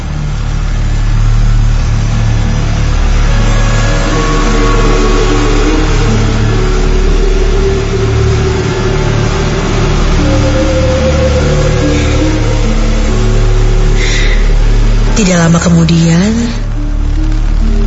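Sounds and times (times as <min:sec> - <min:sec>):
steady low rumble: 0:00.0 - 0:17.8
speech: 0:15.4 - 0:16.6.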